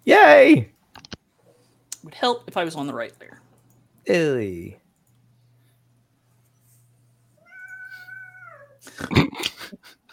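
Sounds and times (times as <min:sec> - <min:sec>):
speech: 0:00.1 - 0:00.7, 0:02.0 - 0:03.4, 0:04.0 - 0:04.8, 0:09.0 - 0:09.5
upset cat meowing: 0:07.4 - 0:08.8.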